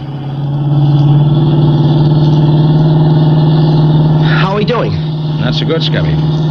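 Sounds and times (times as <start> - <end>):
car engine droning during a chase: 0.0 - 6.4
speech: 5.5 - 6.4.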